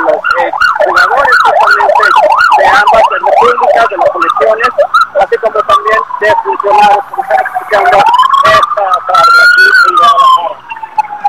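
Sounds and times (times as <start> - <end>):
ambulance siren wailing as it passes: 0.0 - 11.2.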